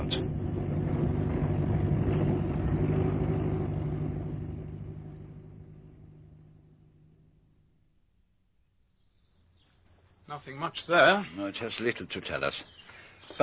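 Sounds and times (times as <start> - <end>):
car engine idling while parking at a lodge: 0.0 - 8.1
speech: 10.3 - 13.4.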